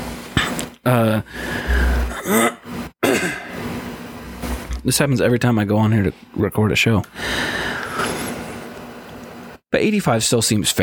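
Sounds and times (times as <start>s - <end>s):
person clearing throat: 0.4s - 3.5s
speech: 0.8s - 1.7s, 2.3s - 2.6s, 4.8s - 7.8s, 9.8s - 10.8s.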